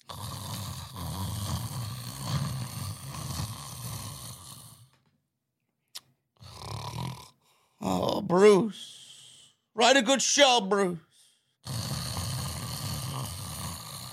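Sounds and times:
wrestler imitating loud snoring in a wrestling ring at an arena in Tulsa: 0.0 - 4.9, 6.4 - 9.0, 11.6 - 14.1
speech: 7.9 - 9.0, 9.8 - 11.8.

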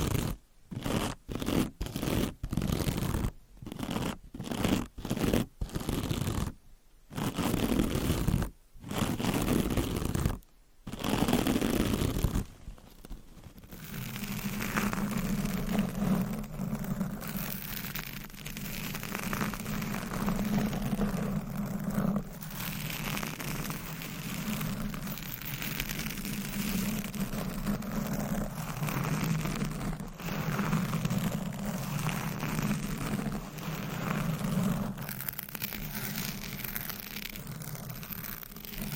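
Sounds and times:
microphone scratching and brushing: 0.0 - 38.9
steady lower rubbing hum: 0.0 - 38.9.

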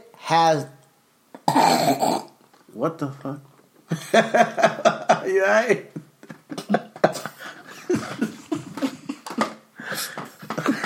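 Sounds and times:
speech: 0.3 - 0.8, 1.4 - 2.2, 2.8 - 6.0
person coughing hard after swallowing chewed weed: 1.4 - 2.4
laughter: 3.9 - 10.8.

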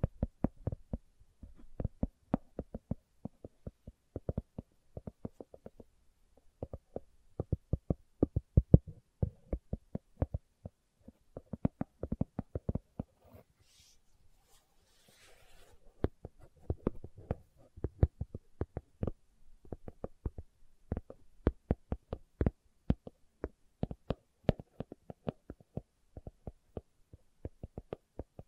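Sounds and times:
slow tapping: 0.0 - 13.2, 16.0 - 28.4
faint rustle or scrape: 13.2 - 15.9.

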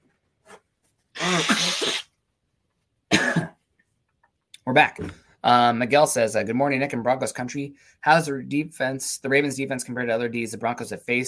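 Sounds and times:
person sniffing: 1.2 - 2.1
person blowing nose: 1.2 - 2.2
speech: 4.7 - 11.2.

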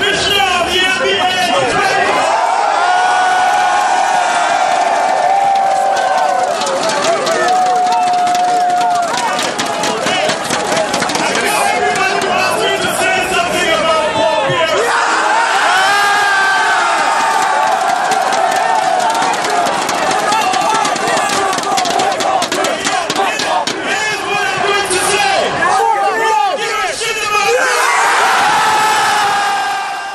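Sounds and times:
large dense crowd yelling and chanting at a rally: 0.0 - 30.1.

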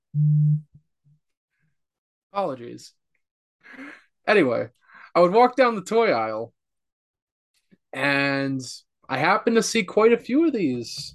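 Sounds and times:
electronic phone tone: 0.1 - 0.7
speech: 0.2 - 0.7, 2.4 - 3.0, 3.7 - 6.6, 7.9 - 11.1.

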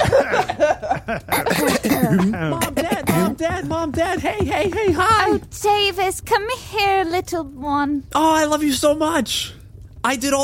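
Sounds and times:
group of people coughing together with forced-sounding coughs: 0.0 - 5.0
people chuckling: 0.0 - 5.5
speech: 1.1 - 2.3, 4.2 - 10.4
throat noises: 1.3 - 4.0.

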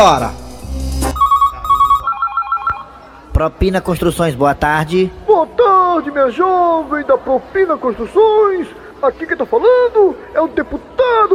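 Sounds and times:
speech: 0.0 - 0.8, 3.4 - 11.3
telephone ringing with electronic trill: 1.1 - 3.2.

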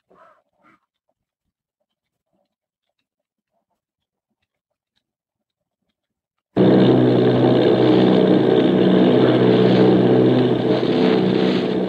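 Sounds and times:
engines of an Army bombing plane and a formation of bombers droning off Bayonne New Jersey: 6.6 - 11.8.

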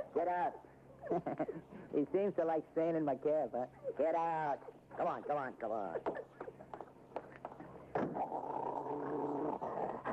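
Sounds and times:
speech: 0.2 - 6.2
police dog and another dog growling and snarling at each other: 7.9 - 10.1.

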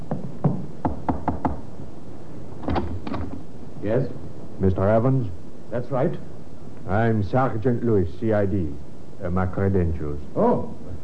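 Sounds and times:
knuckles knocking on a wooden door: 0.0 - 1.7
speech: 3.8 - 10.8.

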